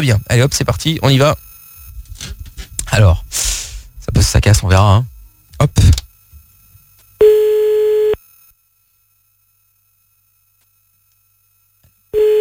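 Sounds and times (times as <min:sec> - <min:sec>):
speech: 0:00.0 - 0:01.4, 0:03.0 - 0:03.6, 0:04.2 - 0:06.0
ringing tone of an outgoing telephone call: 0:07.2 - 0:08.2, 0:12.2 - 0:12.3.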